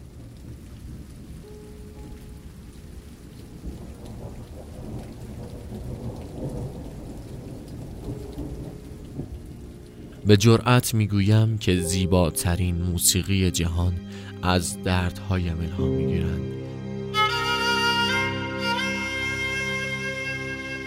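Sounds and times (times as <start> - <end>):
low rumble of thunder: 0.0 - 10.4
steady dense rainfall in a storm: 0.0 - 20.8
speech: 10.3 - 16.6.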